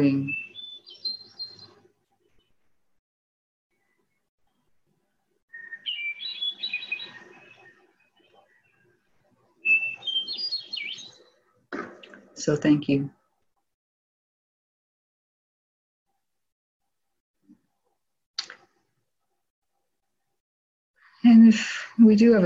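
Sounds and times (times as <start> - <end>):
speech: 0.0 - 0.4, 12.5 - 13.2, 22.1 - 22.4
hermit thrush song: 0.0 - 2.6, 5.5 - 11.4.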